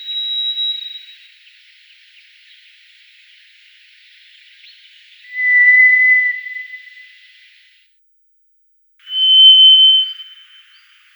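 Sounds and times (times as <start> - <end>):
White's thrush song of long pure whistled notes: 5.3 - 7.1, 9.1 - 10.4.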